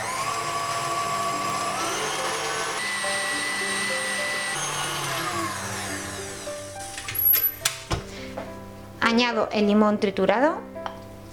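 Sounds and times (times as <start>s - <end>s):
electric mixer beating eggs with added sugar: 0.0s - 6.9s
speech: 9.1s - 10.7s.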